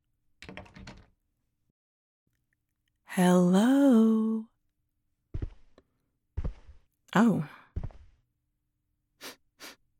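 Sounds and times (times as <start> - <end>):
door handle and latch rattling as door opens: 0.4 - 1.2
speech: 3.2 - 4.2, 7.2 - 7.6.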